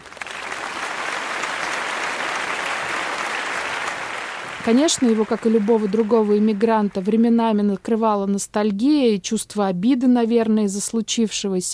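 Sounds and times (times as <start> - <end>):
large concert hall audience applauding: 0.0 - 7.1
speech: 4.6 - 11.7.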